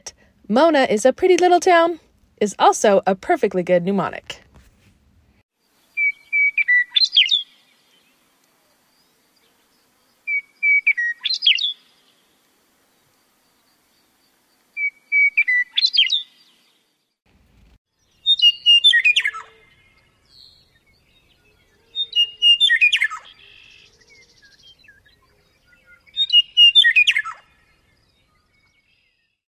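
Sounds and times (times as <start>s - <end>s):
speech: 0.5s - 4.4s
male meadowlark singing: 5.9s - 8.2s, 10.2s - 12.0s, 13.4s - 16.6s, 18.0s - 29.2s.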